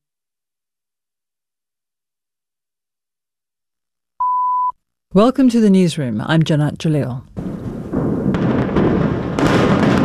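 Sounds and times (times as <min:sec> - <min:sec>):
speech: 0:05.1 - 0:07.6
large explosions demolishing underground tunnels: 0:07.3 - 0:10.0
sharp explosion blasts: 0:07.4 - 0:10.0.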